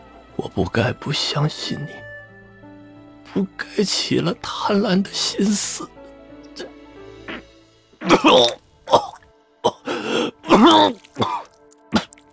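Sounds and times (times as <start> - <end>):
speech: 0.4 - 2.0, 3.3 - 6.0, 8.1 - 9.0, 10.6 - 11.4
throat-clearing rasps: 6.6 - 12.3
wounded, bleeding person coughing violently: 8.0 - 12.1.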